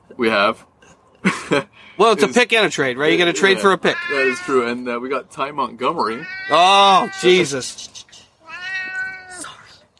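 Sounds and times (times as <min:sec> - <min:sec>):
speech: 0:00.1 - 0:08.0
old cat meowing at a table: 0:03.4 - 0:04.8, 0:06.0 - 0:07.6, 0:08.4 - 0:09.8.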